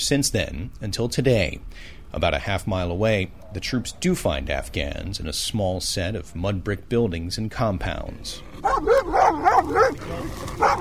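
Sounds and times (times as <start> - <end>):
speech: 0.0 - 10.8
dog barking and yelping at soldiers: 8.4 - 10.8.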